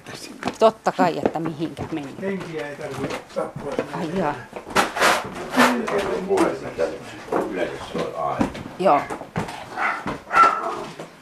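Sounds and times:
speech: 0:00.6 - 0:04.6, 0:05.2 - 0:09.2
dog barking and yipping in greeting: 0:09.7 - 0:10.9.

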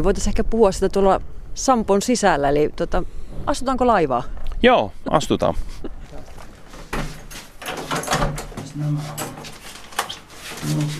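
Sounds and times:
speech: 0:00.0 - 0:06.0, 0:08.8 - 0:09.3, 0:10.6 - 0:10.9
heavy main passenger door of a ship grinding and clattering open: 0:06.8 - 0:10.9.

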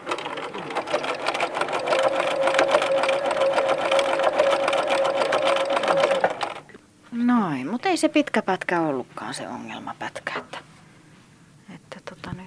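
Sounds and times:
sewing machine stitching with rapid mechanical clatter and whine: 0:00.0 - 0:06.7
speech: 0:08.0 - 0:10.6.

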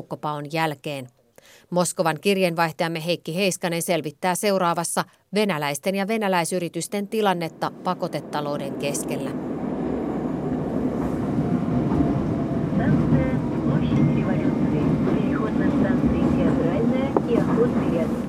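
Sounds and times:
speech: 0:00.0 - 0:09.5
train running through a metro station in Moscow Russia: 0:07.1 - 0:18.2.

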